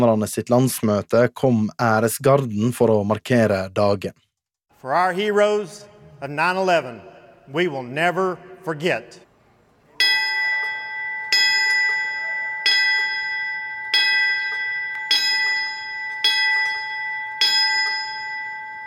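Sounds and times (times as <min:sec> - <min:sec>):
speech: 0:00.0 - 0:04.2, 0:04.8 - 0:09.2
single memorial bell ringing: 0:10.0 - 0:18.8.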